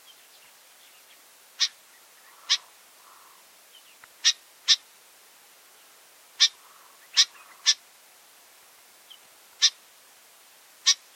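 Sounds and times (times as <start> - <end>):
faint background hiss: 0.0 - 11.1
Familiar chat short harsh broadband chack notes: 1.6 - 3.4, 6.4 - 7.8, 9.6 - 9.8.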